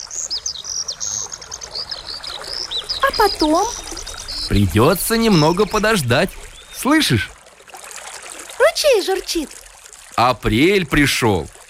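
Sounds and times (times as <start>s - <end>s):
spring birdsong from rooks, starlings and larks chirping and trilling: 0.0s - 7.4s
speech: 3.1s - 3.8s, 4.5s - 7.3s, 9.0s - 9.6s, 10.2s - 11.6s.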